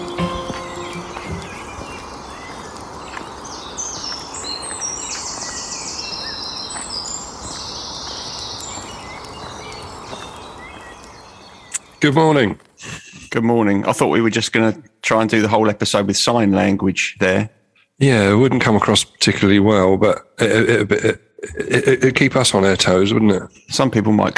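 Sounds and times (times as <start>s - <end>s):
dawn chorus of many birds chirping, trilling and whistling: 0.0s - 13.4s, 22.5s - 24.3s
speech: 12.0s - 12.7s, 13.3s - 24.3s.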